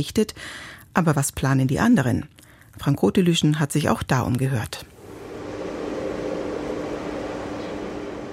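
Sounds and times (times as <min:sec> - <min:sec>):
speech: 0:00.0 - 0:04.9
broadband roar from fusion reactor experiment: 0:04.9 - 0:08.3
faint rising whine: 0:04.9 - 0:08.3.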